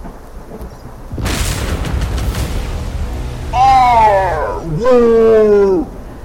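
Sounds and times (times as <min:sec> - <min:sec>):
loud sharp thunderclap with rumbling tail, sound effect: 0:01.1 - 0:06.2
long wavering wordless vocal cries: 0:03.6 - 0:05.9.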